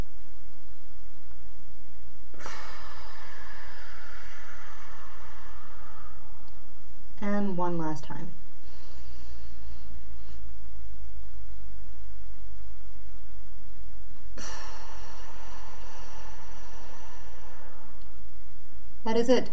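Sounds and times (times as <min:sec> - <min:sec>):
long forceful airy exhale: 0:02.3 - 0:06.8, 0:08.6 - 0:10.5, 0:14.4 - 0:18.2
soft inhale: 0:02.3 - 0:07.0, 0:08.5 - 0:10.7, 0:14.4 - 0:18.6
speech: 0:07.7 - 0:08.5, 0:19.1 - 0:19.5.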